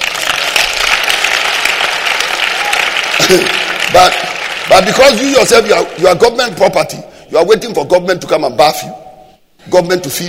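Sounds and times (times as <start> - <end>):
audience applause: 0.0 - 6.0
speech: 3.3 - 9.0, 9.6 - 10.2.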